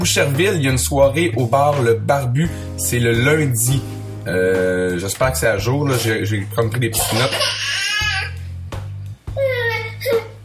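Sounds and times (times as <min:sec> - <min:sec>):
speech: 0:00.0 - 0:07.7
baby babbling: 0:09.4 - 0:10.4.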